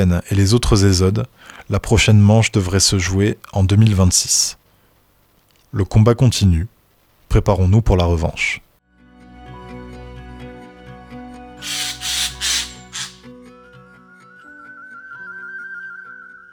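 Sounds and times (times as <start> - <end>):
speech: 0.0 - 4.6, 5.7 - 8.6, 11.6 - 12.0
harsh noisy bird squawks: 11.6 - 13.3.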